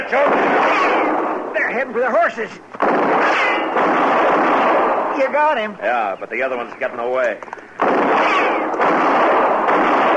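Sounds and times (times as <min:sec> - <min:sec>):
gunshot fired at a fleeing man: 0:00.0 - 0:01.5, 0:02.8 - 0:05.3, 0:07.8 - 0:10.1
speech: 0:00.1 - 0:00.9, 0:01.6 - 0:04.5, 0:05.2 - 0:07.6.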